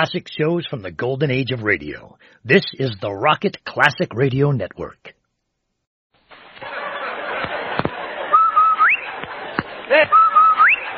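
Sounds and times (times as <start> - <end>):
speech: 0.0 - 5.2, 9.9 - 10.2
busy crackling noise: 0.0 - 10.9
laughter: 6.6 - 10.9
bright whistles sweeping sharply upward: 8.2 - 9.2, 10.0 - 10.9.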